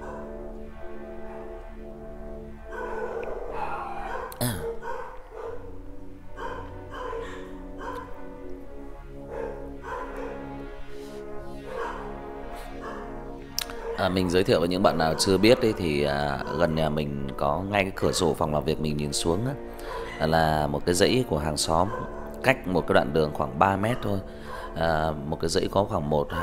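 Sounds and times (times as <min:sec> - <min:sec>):
dog barking with yips and faint whimpers: 0:02.7 - 0:05.8, 0:06.4 - 0:08.2, 0:09.3 - 0:10.6, 0:11.6 - 0:16.8, 0:18.0 - 0:18.4, 0:19.8 - 0:20.6, 0:21.7 - 0:22.2, 0:23.8 - 0:24.8
speech: 0:14.0 - 0:26.4.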